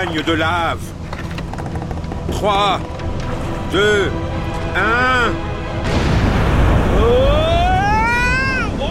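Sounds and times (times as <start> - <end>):
speech: 0.0 - 1.0, 2.3 - 3.0, 3.7 - 6.0, 7.0 - 7.5
huge explosion of detonated explosives: 5.8 - 8.8.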